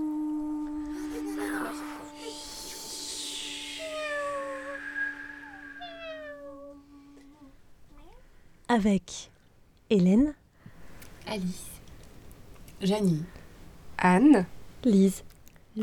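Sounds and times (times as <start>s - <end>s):
faint noise: 0.0s - 15.8s
steady low electrical hum: 0.0s - 15.8s
black cat meowing: 1.4s - 7.5s
speech: 8.8s - 9.3s, 9.9s - 10.4s, 11.3s - 11.7s, 12.8s - 13.4s, 14.0s - 15.8s.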